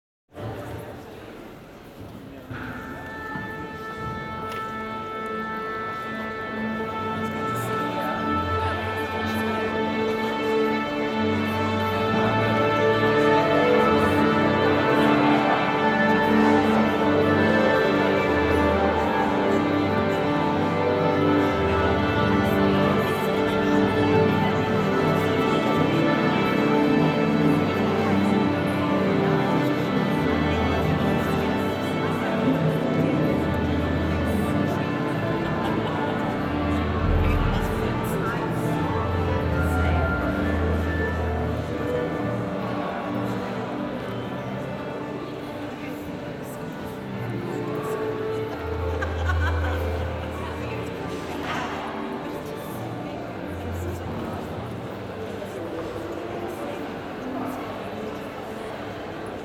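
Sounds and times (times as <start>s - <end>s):
orchestra tuning up: 0.4s - 59.4s
laughter: 34.1s - 38.4s, 48.1s - 51.3s.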